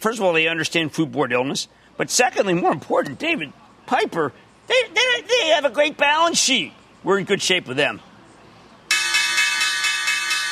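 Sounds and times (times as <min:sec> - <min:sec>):
speech: 0:00.0 - 0:08.1
stock exchange opening bell ringing: 0:08.9 - 0:10.5.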